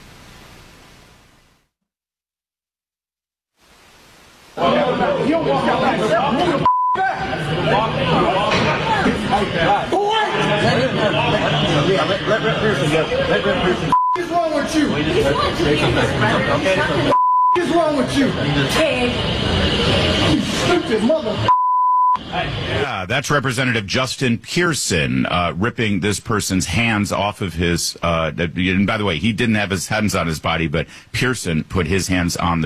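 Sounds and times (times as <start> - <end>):
speech: 4.6 - 6.7, 7.3 - 8.7, 9.3 - 21.5, 22.3 - 32.6
crowd chatter: 4.6 - 21.5, 22.2 - 23.1
censor bleeps over swearing: 6.6 - 7.0, 13.9 - 14.3, 17.1 - 17.7, 21.5 - 22.2.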